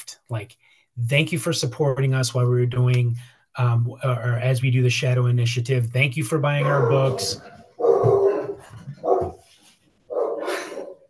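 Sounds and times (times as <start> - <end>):
speech: 0.3 - 7.6
big dog barking deeply at the mail carrier: 6.6 - 9.4, 10.1 - 11.0.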